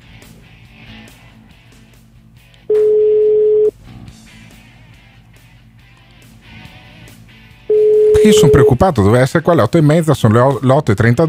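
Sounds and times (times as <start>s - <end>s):
unanswered telephone ringback tone electronic beep: 2.7s - 3.7s, 7.7s - 8.8s
speech: 8.2s - 11.2s.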